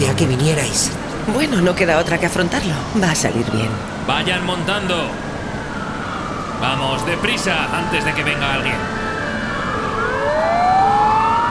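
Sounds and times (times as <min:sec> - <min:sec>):
faint traffic rumble: 0:00.0 - 0:11.4
speech: 0:00.2 - 0:05.3, 0:06.6 - 0:09.0
Turkish police car siren wailing: 0:02.5 - 0:11.4.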